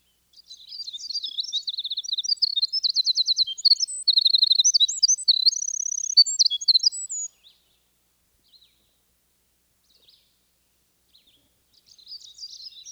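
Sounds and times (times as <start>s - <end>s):
winter wren singing very high tinkling notes and trills: 0.7s - 7.3s.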